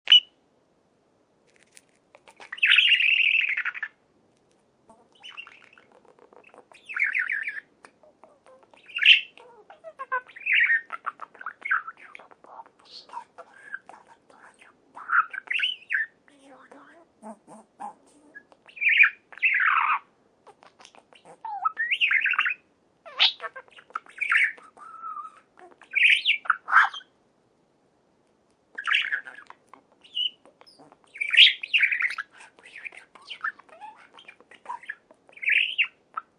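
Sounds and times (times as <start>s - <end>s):
budgerigar singing: 2.2s - 4.0s, 4.9s - 16.2s, 17.5s - 27.1s, 28.8s - 36.3s.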